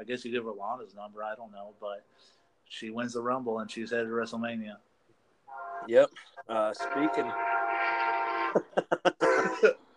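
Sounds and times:
speech: 0:00.0 - 0:04.9, 0:05.5 - 0:09.9
nearby train horn blaring: 0:05.5 - 0:05.9, 0:06.7 - 0:08.6
laughter: 0:08.5 - 0:09.8.

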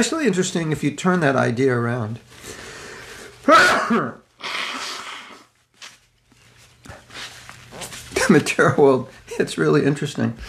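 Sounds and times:
speech: 0:00.0 - 0:02.6, 0:03.4 - 0:04.6, 0:08.3 - 0:10.4
person sneezing: 0:03.4 - 0:05.5
faint rustles: 0:05.6 - 0:08.7.

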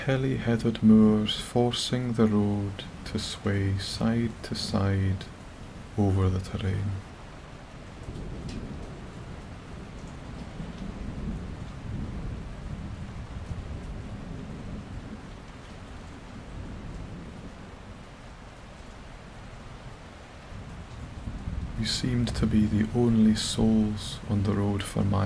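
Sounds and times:
speech: 0:00.0 - 0:05.4, 0:06.0 - 0:07.1, 0:21.8 - 0:25.2
steady heavy rain: 0:00.0 - 0:25.2
deep rolling thunder: 0:08.0 - 0:17.8, 0:20.5 - 0:23.0.

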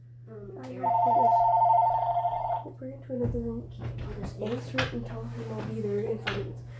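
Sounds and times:
low constant hum: 0:00.0 - 0:06.7
people talking: 0:00.3 - 0:06.7
telephone ringing with electronic trill: 0:00.8 - 0:02.7.

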